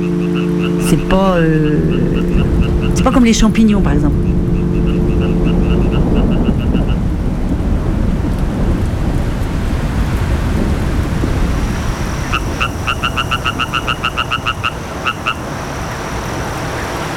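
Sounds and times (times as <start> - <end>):
heavy rain downpour: 0.0 - 17.1
speech: 0.9 - 4.4.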